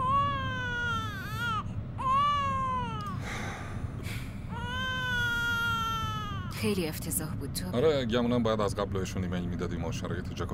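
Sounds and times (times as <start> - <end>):
baby crying: 0.0 - 3.2, 4.5 - 6.8
low rumble: 0.0 - 10.5
speech: 6.6 - 10.5.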